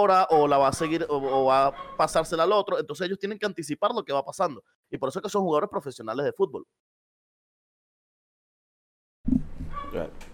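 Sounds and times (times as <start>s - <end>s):
speech: 0.0s - 6.9s, 9.3s - 10.3s
dog barking: 1.0s - 2.2s
dog yelping and crying: 1.1s - 2.1s.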